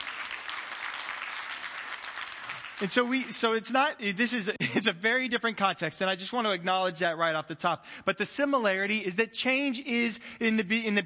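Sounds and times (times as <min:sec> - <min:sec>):
large gathering applauding: 0:00.0 - 0:03.6
speech: 0:02.8 - 0:11.0.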